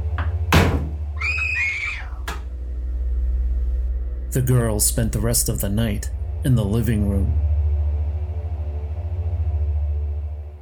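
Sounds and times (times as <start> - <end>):
low steady hum: 0.0 - 10.5
bathroom mirror cabinet banging and slamming shut: 0.5 - 1.0
bathroom mirror cabinet creaking as it swings: 1.2 - 2.4
speech: 4.4 - 7.5.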